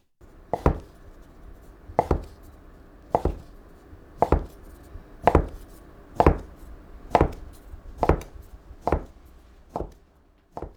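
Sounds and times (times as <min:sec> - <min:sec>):
knife chopping folded noodle dough on a board: 0:00.2 - 0:10.7.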